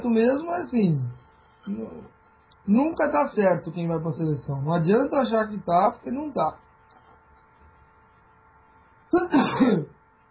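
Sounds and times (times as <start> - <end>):
speech: 0.0 - 6.6, 9.1 - 10.0
short throaty cough: 9.2 - 9.9.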